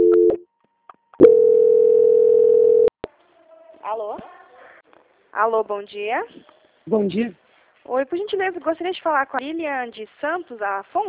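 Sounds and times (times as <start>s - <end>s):
telephone tone during a call transfer: 0.0s - 0.4s, 1.2s - 2.9s
speech: 5.4s - 11.0s.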